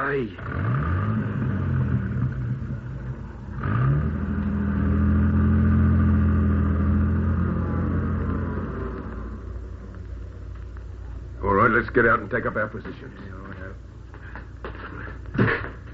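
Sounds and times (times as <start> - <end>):
speech: 0.1 - 0.8, 11.9 - 13.9
old car engine revving and driving off: 0.4 - 10.4.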